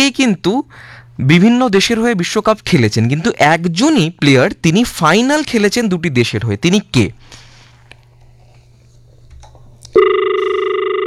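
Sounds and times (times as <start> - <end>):
speech: 0.0 - 7.4, 10.0 - 10.2
telephone ringing: 10.0 - 11.0.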